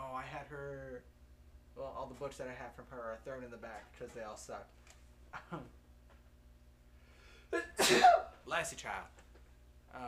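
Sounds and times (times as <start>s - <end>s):
quiet hum: 0.0s - 10.0s
speech: 1.8s - 5.8s, 7.5s - 9.2s
person sneezing: 7.5s - 8.4s.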